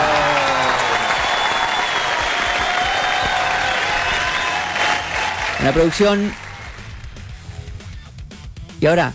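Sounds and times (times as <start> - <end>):
crowd clapping: 0.0 - 7.8
speech: 5.6 - 6.4, 8.8 - 9.1.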